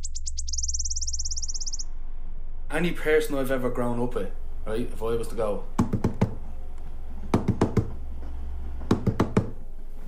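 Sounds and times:
low steady hum: 0.0s - 10.0s
speech: 2.7s - 5.8s
person tapping knocks imitating the clattering rhythm of a commuter train: 7.3s - 8.0s, 8.9s - 9.6s.

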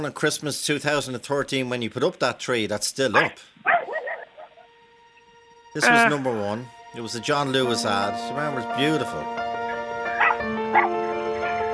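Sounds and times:
speech: 0.0s - 3.6s, 5.8s - 9.6s
dog yipping: 3.2s - 4.7s, 10.1s - 11.0s
music: 3.9s - 11.7s.

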